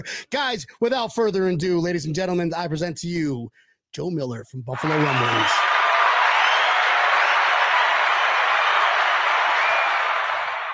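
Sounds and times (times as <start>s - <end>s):
speech: 0.0s - 5.7s
crowd applause: 4.8s - 10.7s.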